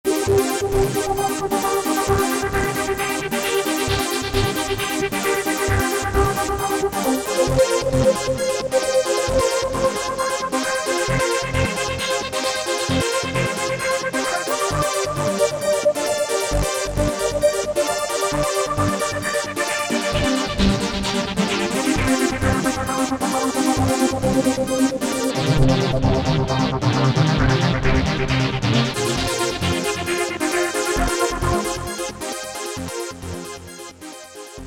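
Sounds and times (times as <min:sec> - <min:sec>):
psychedelic trance on a Korg MS2000 synthesizer: 0:00.1 - 0:34.6.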